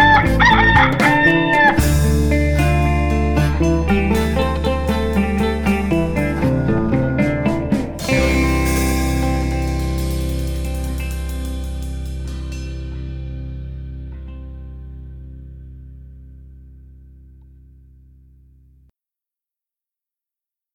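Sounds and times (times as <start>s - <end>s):
rooster crowing: 0.0s - 1.8s
band playing a tune: 0.0s - 13.6s.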